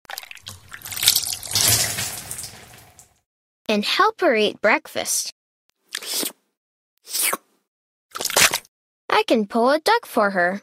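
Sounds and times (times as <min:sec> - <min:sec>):
juice pouring into a cup: 0:00.1 - 0:03.1
speech: 0:03.7 - 0:05.4, 0:07.1 - 0:07.4, 0:09.2 - 0:10.6.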